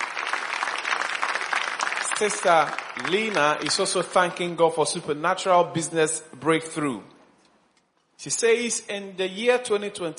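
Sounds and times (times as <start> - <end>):
crowd clapping: 0.0 - 4.4
speech: 2.2 - 7.1, 8.2 - 10.1.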